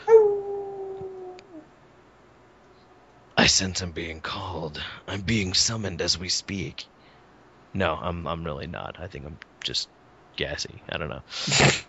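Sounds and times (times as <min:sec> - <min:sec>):
long wolf-like howl at the moon: 0:00.0 - 0:01.6
speech: 0:03.4 - 0:06.9, 0:07.7 - 0:11.8.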